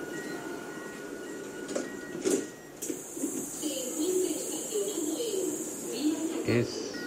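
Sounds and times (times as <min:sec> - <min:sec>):
modern electric commuter train humming and rumbling: 0:00.0 - 0:07.0
hiss: 0:02.9 - 0:06.4.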